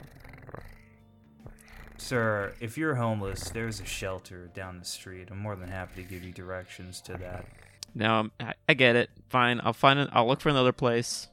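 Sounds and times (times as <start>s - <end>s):
cat purring: 0.0s - 8.3s
speech: 2.0s - 11.3s.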